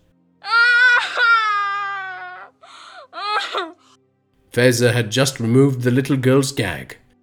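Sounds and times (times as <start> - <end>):
young girl screaming and wailing: 0.4 - 3.9
young girl choked gasp: 2.6 - 3.9
speech: 4.5 - 7.0.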